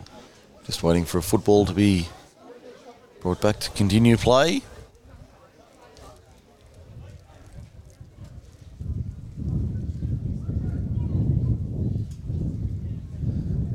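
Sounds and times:
speech: 0:00.7 - 0:02.2, 0:03.2 - 0:04.7
wind gusting at an under 17 boys football grand final: 0:06.8 - 0:13.7.

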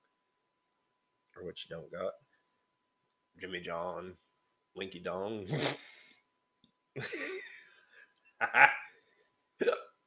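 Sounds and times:
speech: 0:01.4 - 0:02.3, 0:03.4 - 0:06.0, 0:07.0 - 0:07.5, 0:08.4 - 0:08.8
hiccups: 0:05.5 - 0:05.8, 0:09.6 - 0:10.0.

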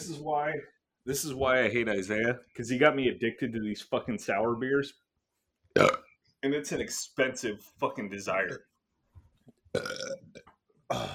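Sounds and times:
speech: 0:00.1 - 0:05.0, 0:05.8 - 0:08.7, 0:09.7 - 0:11.1
person burping into a microphone: 0:05.8 - 0:06.1, 0:09.8 - 0:11.1.

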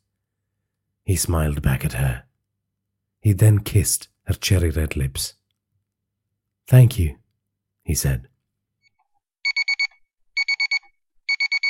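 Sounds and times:
speech: 0:01.1 - 0:02.3, 0:03.2 - 0:05.4, 0:06.7 - 0:07.2, 0:07.9 - 0:08.3
electronic alarm clock beeping: 0:09.4 - 0:11.6.

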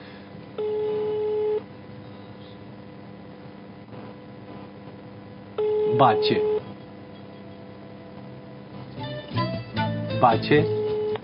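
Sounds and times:
phone line ringback tone during a live broadcast call: 0:00.6 - 0:01.6, 0:05.6 - 0:06.7, 0:10.6 - 0:11.2
speech: 0:06.0 - 0:06.5, 0:10.2 - 0:10.8.

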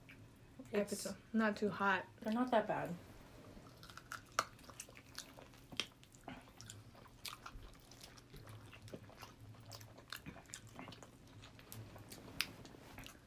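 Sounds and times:
speech: 0:00.7 - 0:03.1
chewing an air-fried chicken wing: 0:03.6 - 0:13.2.

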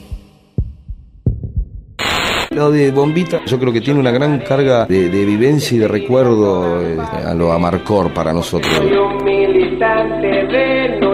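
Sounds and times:
deep thumping heartbeat sound effect in a radio jingle: 0:00.1 - 0:02.0
loud steady burst of hissing static: 0:02.0 - 0:02.6, 0:08.6 - 0:08.9
speech: 0:02.6 - 0:11.1.

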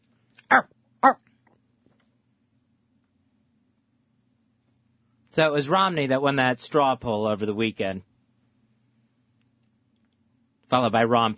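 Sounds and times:
dog barking: 0:00.5 - 0:01.2
speech: 0:00.5 - 0:01.2, 0:05.4 - 0:08.1, 0:10.7 - 0:11.3.

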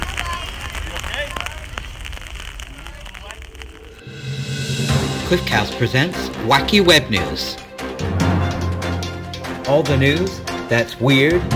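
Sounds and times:
heavy rain falling: 0:00.0 - 0:11.5
tonal sound: 0:03.6 - 0:09.6
speech: 0:05.3 - 0:07.6, 0:09.7 - 0:11.5.

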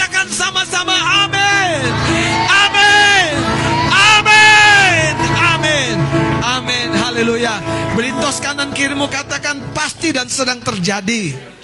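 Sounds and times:
crowd cheering and shouting in a large space: 0:00.0 - 0:09.2
speech: 0:08.3 - 0:11.6.

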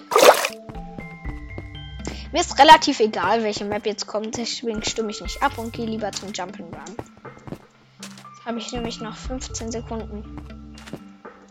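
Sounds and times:
video game water splashing: 0:00.0 - 0:00.6
speech: 0:02.3 - 0:07.1, 0:08.5 - 0:10.5.

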